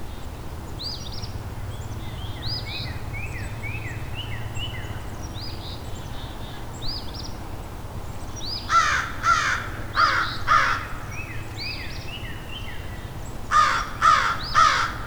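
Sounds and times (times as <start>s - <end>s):
wild American crows cawing agitatedly while perching: 8.7s - 11.3s, 13.5s - 15.0s.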